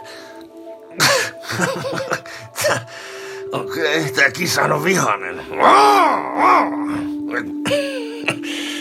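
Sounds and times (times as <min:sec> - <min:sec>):
laughter: 0:01.0 - 0:02.9
speech: 0:03.9 - 0:08.6
person imitating an angry cat's growl: 0:05.5 - 0:07.6.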